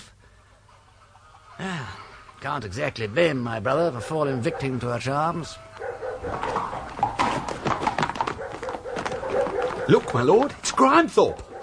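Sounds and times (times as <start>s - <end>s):
speech: 1.6s - 7.0s, 9.9s - 11.5s
horse hooves clip-clopping: 5.7s - 11.6s.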